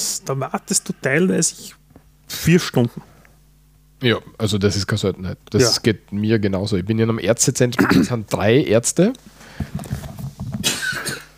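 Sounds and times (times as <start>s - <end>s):
speech: 0.2s - 1.8s, 2.4s - 3.1s, 4.0s - 10.0s
person coughing: 7.8s - 8.2s, 10.6s - 11.3s.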